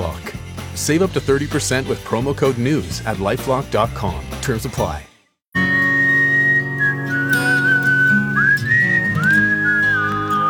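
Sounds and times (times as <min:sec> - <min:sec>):
speech: 0:00.8 - 0:05.1
full steady band backing: 0:05.6 - 0:08.6
whistled melody of a song intro: 0:05.6 - 0:10.4.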